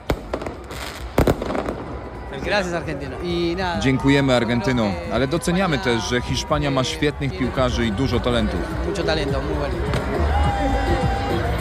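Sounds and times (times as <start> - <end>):
fireworks banging and crackling at a night street celebration in Buenos Aires: 0.0 - 2.6
crowd of football fans singing and celebrating in the streets of Buenos Aires: 0.0 - 11.5
speech: 2.4 - 10.8.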